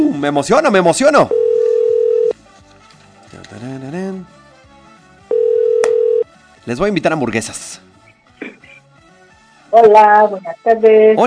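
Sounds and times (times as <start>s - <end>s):
speech: 0.0s - 1.4s, 6.7s - 7.8s, 9.8s - 11.2s
telephone ringback tone of an outgoing call: 1.3s - 2.3s, 5.3s - 6.3s.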